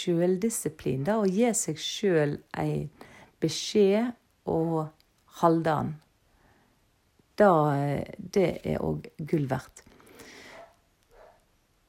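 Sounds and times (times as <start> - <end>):
speech: 0.0 - 6.0, 7.4 - 9.8
dog barking: 10.5 - 11.5.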